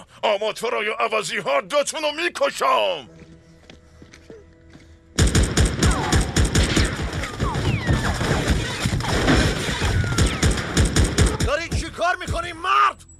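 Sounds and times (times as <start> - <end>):
speech: 0.0 - 3.2, 12.0 - 13.1
loud volley of rapid gunfire: 5.2 - 12.0.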